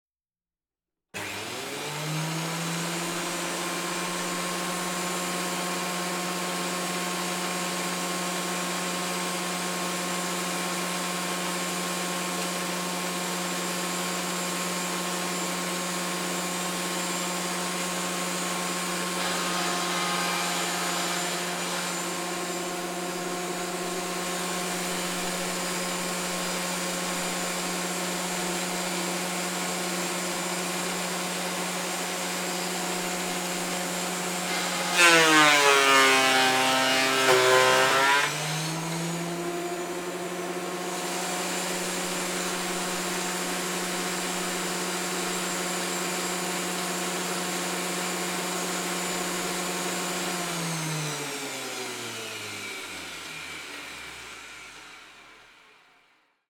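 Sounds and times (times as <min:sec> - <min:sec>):
table planer machine planing wood: 0:01.2 - 0:55.9.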